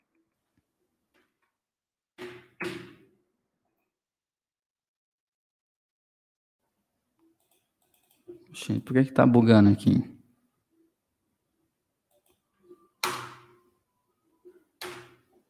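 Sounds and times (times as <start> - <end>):
computer mouse clicking a buy button: 7.2 - 8.3
speech: 8.3 - 10.1.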